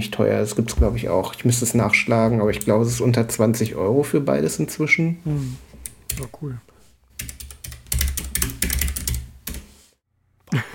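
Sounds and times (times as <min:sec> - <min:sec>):
speech: 0:00.0 - 0:06.7
loud rapid computer keyboard typing: 0:05.8 - 0:06.3, 0:07.2 - 0:09.7.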